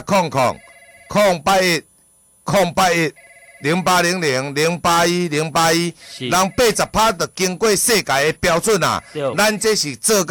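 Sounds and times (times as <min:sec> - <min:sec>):
speech: 0:00.0 - 0:01.9, 0:02.5 - 0:10.2
telephone ringing in a double-ring pattern: 0:00.4 - 0:01.3, 0:03.1 - 0:04.0, 0:06.3 - 0:07.2.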